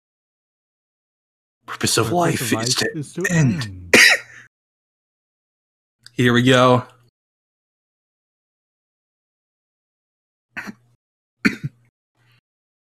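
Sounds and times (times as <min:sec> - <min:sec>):
speech: 0:01.7 - 0:04.2, 0:06.2 - 0:06.9
person coughing: 0:02.6 - 0:04.5, 0:11.4 - 0:11.9
throat clearing: 0:03.2 - 0:04.5, 0:10.6 - 0:11.9.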